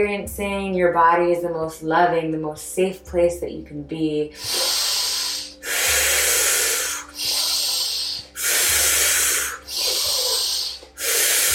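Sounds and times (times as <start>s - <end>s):
speech: 0.0s - 4.7s
person breathing forcefully in and out during a breathwork session: 4.4s - 11.5s.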